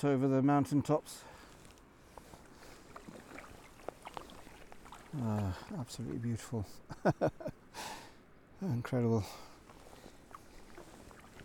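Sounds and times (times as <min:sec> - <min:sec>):
speech: 0:00.0 - 0:01.4, 0:05.2 - 0:08.0, 0:08.6 - 0:09.5
light wind: 0:00.0 - 0:11.4
kayak paddle strokes through calm water: 0:01.3 - 0:06.3, 0:09.4 - 0:11.4.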